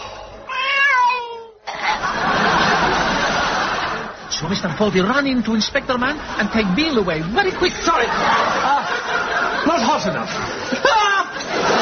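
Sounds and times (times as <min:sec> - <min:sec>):
very ill cat meowing in a backyard: 0:00.5 - 0:01.6
laughter: 0:01.7 - 0:11.8
speech: 0:04.5 - 0:08.8, 0:09.6 - 0:11.0.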